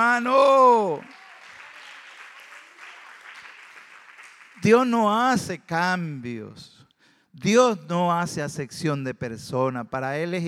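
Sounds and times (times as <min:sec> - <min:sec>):
speech: 0:00.0 - 0:01.2, 0:04.6 - 0:06.8, 0:07.4 - 0:10.4
audience applauding: 0:00.0 - 0:04.9.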